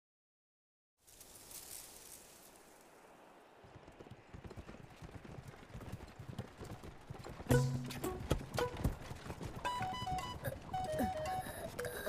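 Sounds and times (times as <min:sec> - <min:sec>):
horse hooves clip-clopping pulling a carriage: 0:03.6 - 0:11.8.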